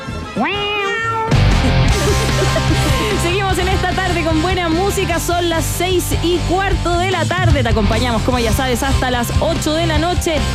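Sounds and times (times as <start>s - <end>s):
busy music with faint mewing tones: 0.0s - 10.5s
cat meowing: 0.2s - 1.4s
speech: 0.4s - 0.8s, 2.1s - 10.5s
laughter: 1.4s - 4.4s.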